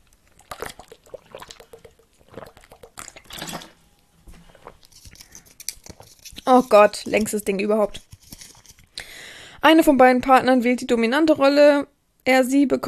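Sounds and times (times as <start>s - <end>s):
person sipping water with soft wet gulps: 0.0s - 6.5s
speech: 6.5s - 8.0s, 9.7s - 12.8s.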